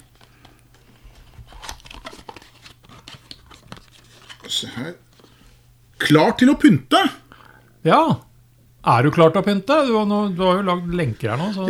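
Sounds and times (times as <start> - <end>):
steady low hum: 0.0 - 11.6
paper advent calendar door crinkling and tearing: 1.5 - 5.3
speech: 4.5 - 5.1, 6.0 - 7.2, 7.8 - 11.6.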